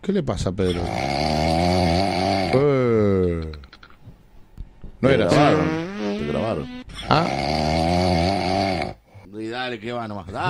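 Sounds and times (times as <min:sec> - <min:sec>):
speech: 0:00.0 - 0:01.3, 0:02.5 - 0:03.6, 0:05.0 - 0:08.0, 0:09.7 - 0:10.4
recorded human snore with a raspy droning tone: 0:00.7 - 0:03.4, 0:05.3 - 0:09.1.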